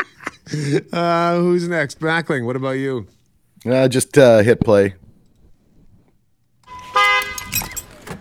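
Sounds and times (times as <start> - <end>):
speech: 0.5 - 5.0
car horn beep after a traffic light turned green: 6.6 - 7.8.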